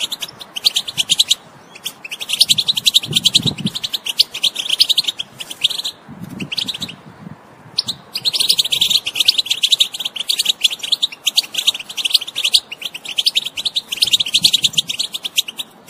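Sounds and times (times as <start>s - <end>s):
wild European goldfinch twittering song: 0.0s - 7.1s, 7.7s - 15.8s.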